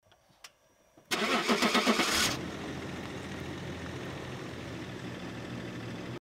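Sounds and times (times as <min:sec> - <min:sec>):
engine starting: 0:01.1 - 0:02.4.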